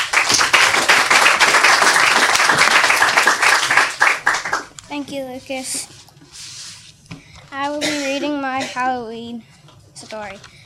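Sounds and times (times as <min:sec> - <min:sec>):
audience applause at a children's story reading: 0:00.0 - 0:04.8
speech: 0:05.0 - 0:06.0, 0:07.5 - 0:09.5, 0:10.1 - 0:10.6.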